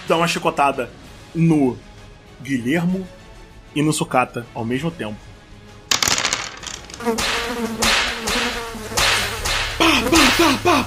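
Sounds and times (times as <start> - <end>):
speech: 0.1 - 5.3, 7.0 - 7.9, 10.4 - 10.8
swarm of flies buzzing: 6.6 - 10.6.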